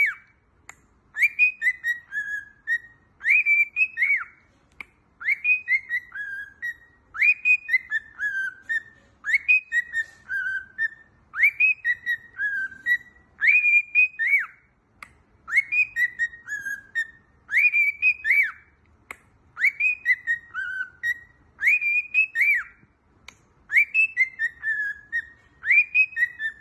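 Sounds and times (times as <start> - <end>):
several cockatiels whistling a short tune: 0.0 - 0.4, 1.1 - 4.4, 5.2 - 14.7, 15.4 - 18.8, 19.5 - 22.9, 23.7 - 26.5.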